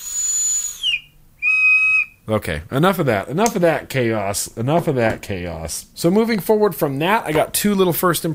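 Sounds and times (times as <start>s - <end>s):
electronic whistle from a vape box mod in whistle mode: 0.0s - 2.2s
speech: 2.3s - 8.3s.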